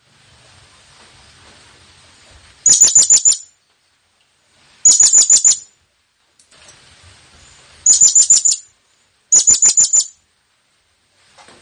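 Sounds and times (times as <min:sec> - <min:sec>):
Blue-crowned hanging parrot call: 0:02.6 - 0:03.5, 0:04.8 - 0:05.7, 0:07.9 - 0:08.7, 0:09.3 - 0:10.2.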